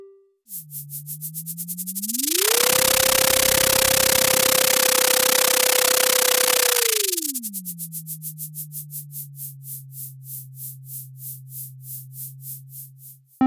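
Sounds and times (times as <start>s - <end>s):
low electronic tone from sonified echo sounder data of zooplankton migration: 0.5s - 7.6s
rapid clicking pulses: 0.5s - 13.3s
loud hiss of static: 2.1s - 7.5s.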